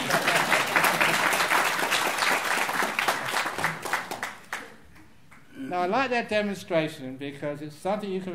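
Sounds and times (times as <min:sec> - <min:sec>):
audience clapping: 0:00.0 - 0:05.5
speech: 0:05.8 - 0:08.3.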